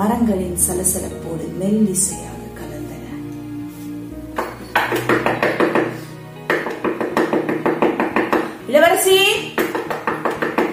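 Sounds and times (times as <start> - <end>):
speech: 0.0 - 2.7
maidservants knocking on a princess's wooden door: 4.8 - 8.5, 9.6 - 10.7.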